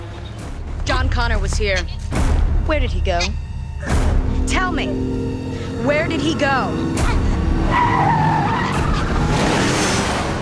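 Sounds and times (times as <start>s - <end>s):
speech: 1.0s - 7.1s
truck tires skidding in a parking lot: 7.6s - 10.3s.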